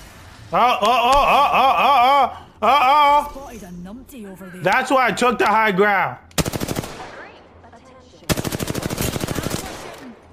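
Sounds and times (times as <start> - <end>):
speech: 0.5 - 6.2
laughter: 0.6 - 3.3
rapid automatic gunfire in a video game: 6.4 - 7.4, 8.3 - 10.3.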